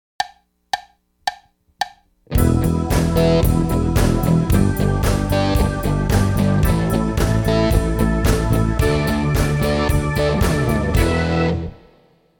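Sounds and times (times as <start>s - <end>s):
drums: 2.3s - 11.7s.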